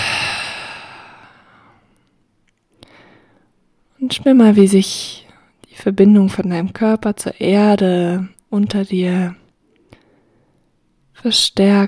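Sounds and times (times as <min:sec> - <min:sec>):
deep breath out through the mouth while lying down in guided relaxation: 0:00.0 - 0:01.7
speech: 0:04.0 - 0:05.2, 0:05.8 - 0:09.4, 0:11.2 - 0:11.8.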